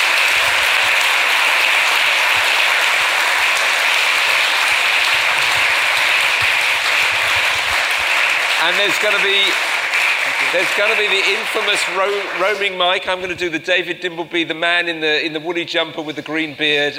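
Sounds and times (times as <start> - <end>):
audience at a talk applauding: 0.0 - 13.2
speech: 8.6 - 9.7, 10.5 - 16.9.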